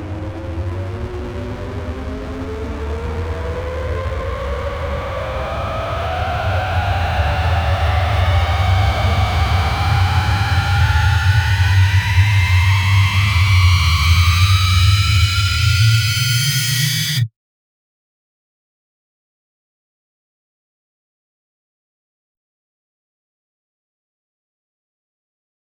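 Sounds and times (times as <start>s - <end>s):
fast rapid pulsing cinematic riser: 0.2s - 17.3s.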